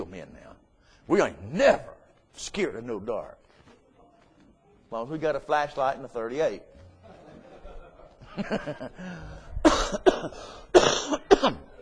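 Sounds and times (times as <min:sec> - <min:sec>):
speech: 0:00.1 - 0:03.4, 0:04.9 - 0:06.7, 0:08.4 - 0:11.7
laughter: 0:06.9 - 0:09.5
man clearing throat: 0:09.6 - 0:11.8
man coughing as if choking: 0:09.6 - 0:11.8.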